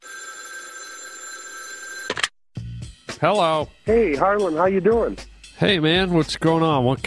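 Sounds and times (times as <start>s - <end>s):
telephone ringing with an electronic trill: 0.0s - 2.3s
speech: 3.2s - 7.0s.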